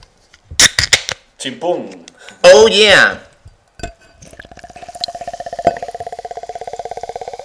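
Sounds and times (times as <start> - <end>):
speech: 1.4 - 3.3
drink fizzing: 4.2 - 7.4.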